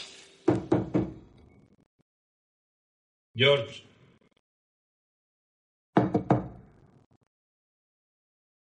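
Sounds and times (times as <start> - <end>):
knocking on a door: 0.5 - 1.3, 5.9 - 6.7
speech: 3.4 - 3.9.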